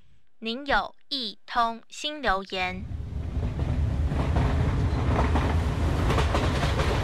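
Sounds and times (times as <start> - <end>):
speech: 0.4 - 3.0
train rumbling on rails: 2.8 - 7.0
train wheels clickety-clack on rails: 3.3 - 7.0.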